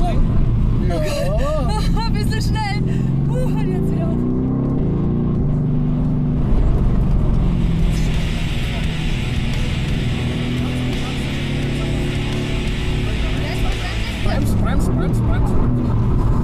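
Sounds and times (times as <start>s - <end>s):
car engine and road rumble: 0.0s - 16.4s.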